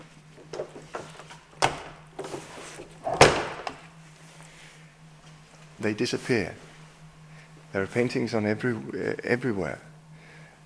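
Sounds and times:
heavy door pushed shut: 3.0 - 3.8
wooden clunks: 3.1 - 3.8
speech: 5.8 - 6.7, 7.7 - 9.9.

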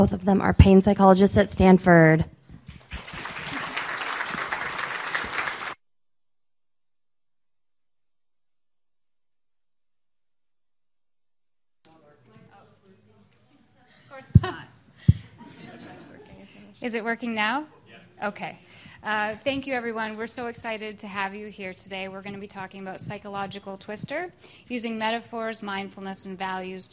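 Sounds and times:
speech: 0.0 - 2.4, 16.9 - 26.9
audience applause: 2.7 - 5.8
laughter: 3.1 - 5.6, 13.9 - 16.5.

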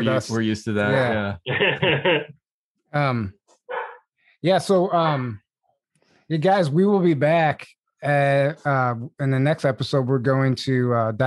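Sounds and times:
laughter: 0.0 - 2.3
speech: 0.0 - 3.4, 4.4 - 5.4, 6.3 - 11.2
dog barking at passerby: 3.7 - 4.0.

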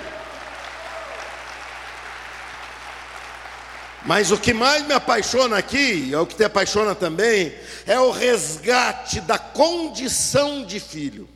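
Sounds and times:
congregation applauding: 0.0 - 4.9
speech: 4.0 - 11.3.

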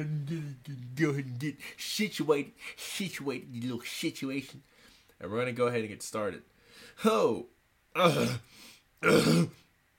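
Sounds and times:
speech: 0.0 - 9.6
person clearing throat: 8.0 - 9.7.

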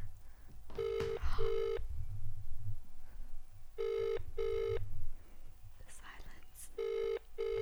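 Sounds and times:
phone ringback tone with two short buzzy pulses: 0.8 - 1.8, 3.8 - 4.8, 6.8 - 7.6.

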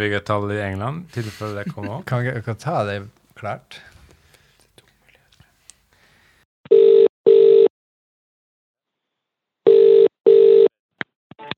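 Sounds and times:
speech: 0.0 - 3.9
laughter: 1.1 - 2.3
ringback tone of an outgoing phone call: 6.7 - 7.7, 9.7 - 10.7.

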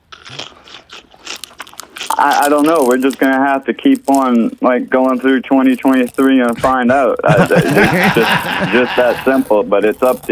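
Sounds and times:
person chewing crisp chips: 0.0 - 10.3
speech: 2.2 - 10.3
laughter: 6.7 - 9.9.

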